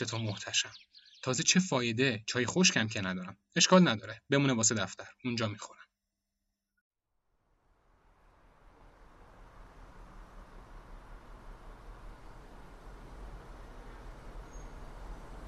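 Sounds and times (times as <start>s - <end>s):
speech: 0.0s - 5.8s
city traffic jam at the Hafez and Vali-Asr intersection: 8.2s - 15.4s.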